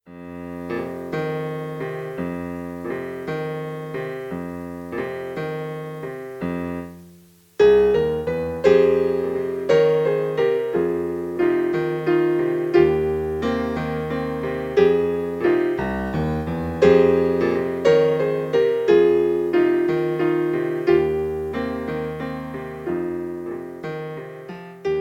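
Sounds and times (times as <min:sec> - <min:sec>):
German folk song arranged for solo piano: 0:00.0 - 0:24.9.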